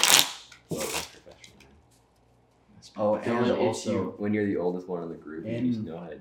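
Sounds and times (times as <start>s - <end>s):
deck of playing cards being shuffled: 0.0s - 1.6s
speech: 3.0s - 6.1s.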